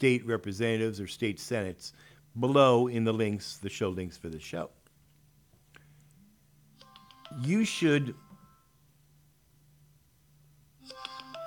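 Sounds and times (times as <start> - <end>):
speech: 0.0 - 4.8, 7.3 - 8.2
mobile phone ringtone: 6.8 - 8.8, 10.8 - 11.4.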